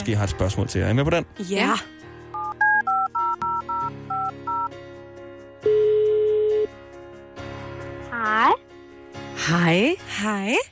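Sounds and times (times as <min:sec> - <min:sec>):
speech: 0:00.0 - 0:02.1, 0:09.5 - 0:10.7
electronic phone keypad beeps: 0:02.4 - 0:04.7
telephone ringing tone: 0:02.4 - 0:04.7, 0:05.6 - 0:06.7.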